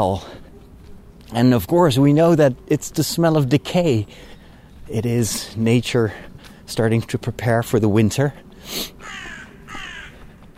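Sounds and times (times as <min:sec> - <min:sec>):
speech: 0:00.0 - 0:00.4, 0:01.3 - 0:04.3, 0:04.9 - 0:09.2
crow cawing in an autumn forest in the evening: 0:09.0 - 0:10.4.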